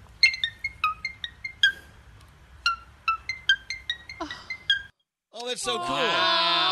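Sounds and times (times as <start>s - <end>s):
cockatoo mimicking an iPhone ringtone: 0.2s - 1.9s, 2.6s - 4.9s
speech: 5.5s - 6.6s.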